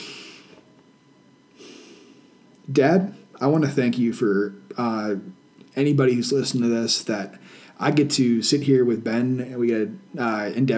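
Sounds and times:
person taking a deep breath before praying: 0:00.0 - 0:00.6, 0:01.6 - 0:02.4, 0:07.4 - 0:07.8
speech: 0:02.7 - 0:10.7.

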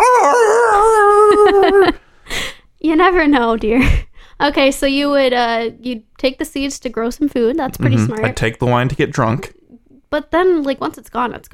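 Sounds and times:
person imitating a howling dog: 0:00.0 - 0:02.0
laughter: 0:01.1 - 0:02.0
speech: 0:02.9 - 0:11.5.

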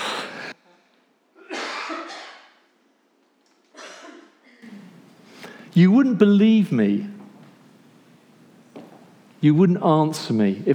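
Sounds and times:
person coughing harshly: 0:01.4 - 0:02.5, 0:03.8 - 0:05.0
speech: 0:05.8 - 0:07.2, 0:09.4 - 0:10.7.

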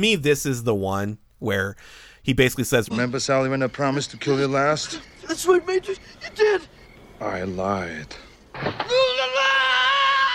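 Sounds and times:
speech: 0:00.0 - 0:09.1
man screaming as he falls into a canyon: 0:08.9 - 0:10.3.

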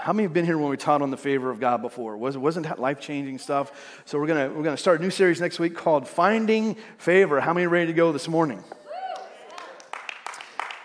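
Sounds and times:
speech: 0:00.0 - 0:08.8
few people clapping: 0:09.0 - 0:10.8.

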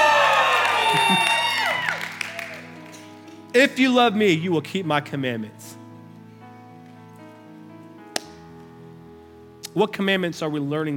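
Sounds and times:
large church audience yelling and cheering: 0:00.0 - 0:02.8
speech: 0:03.6 - 0:05.6, 0:09.8 - 0:10.9.

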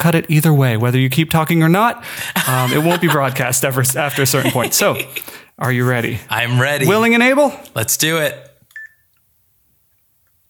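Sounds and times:
speech: 0:00.0 - 0:08.5
laughter: 0:02.2 - 0:05.4
sharp electronic timer beep: 0:08.8 - 0:09.1.

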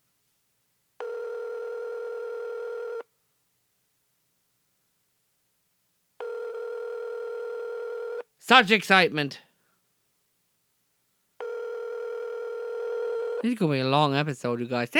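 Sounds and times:
long steady electronic phone ring tones on a call: 0:01.0 - 0:03.0, 0:06.2 - 0:08.2, 0:11.4 - 0:13.5
speech: 0:08.4 - 0:09.4, 0:13.4 - 0:14.9.

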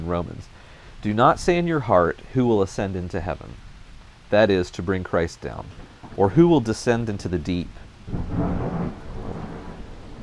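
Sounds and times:
steady wash of rain: 0:00.0 - 0:10.2
speech: 0:00.1 - 0:03.6, 0:04.3 - 0:08.8
low heavy thunder rumbling during a storm: 0:05.6 - 0:10.2.

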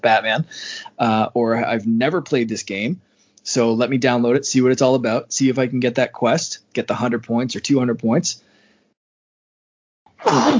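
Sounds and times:
speech: 0:00.0 - 0:08.5, 0:10.2 - 0:10.5
faint intake of breath: 0:00.5 - 0:01.0, 0:08.4 - 0:09.0
sneeze: 0:10.2 - 0:10.5.

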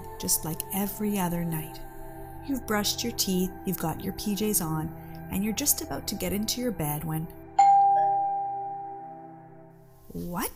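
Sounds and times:
speech: 0:00.2 - 0:07.4, 0:10.1 - 0:10.5
doorbell chiming: 0:07.6 - 0:09.4.

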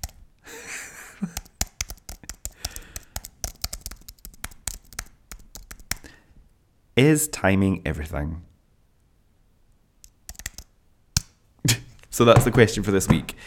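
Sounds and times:
computer keyboard being handled and switched off: 0:01.3 - 0:06.0, 0:10.0 - 0:11.3
speech: 0:07.0 - 0:08.5, 0:12.2 - 0:13.4.

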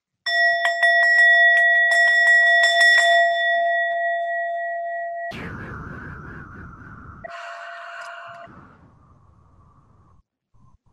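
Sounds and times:
singing bowl ringing: 0:00.3 - 0:05.3
burst of noise: 0:05.3 - 0:10.2.

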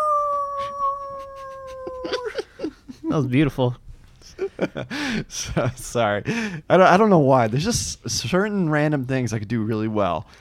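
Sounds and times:
person imitating a wolf howl: 0:00.0 - 0:02.5
speech: 0:03.1 - 0:03.8, 0:04.6 - 0:10.4.

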